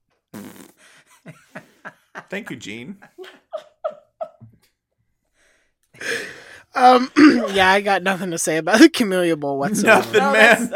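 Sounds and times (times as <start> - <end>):
fart sound effect from a sampler: 0.3 - 0.8
laughter: 1.1 - 4.6, 9.6 - 10.7
speech: 1.2 - 1.5, 2.3 - 3.2, 6.8 - 10.7.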